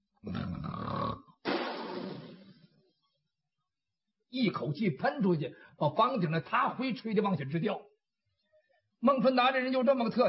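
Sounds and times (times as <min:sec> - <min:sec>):
voice imitating loud rumbling snoring: 0:00.2 - 0:01.4
speech: 0:04.4 - 0:07.9, 0:09.0 - 0:10.2.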